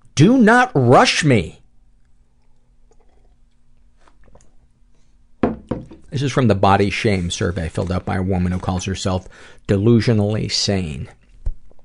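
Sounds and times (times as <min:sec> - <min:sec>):
faint steady hum: 0:00.0 - 0:11.8
speech: 0:00.2 - 0:01.6, 0:06.2 - 0:11.2
person sipping tea: 0:02.1 - 0:05.2.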